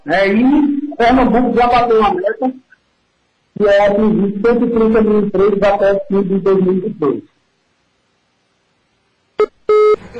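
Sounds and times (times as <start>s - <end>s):
speech: 0.0s - 2.6s, 3.6s - 7.3s
electronic telephone beeps as a call drops: 9.4s - 10.1s.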